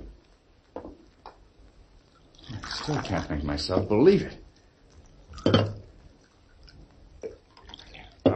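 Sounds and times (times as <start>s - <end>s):
coffee pouring into a cup: 2.1s - 8.3s
speech: 2.9s - 4.5s.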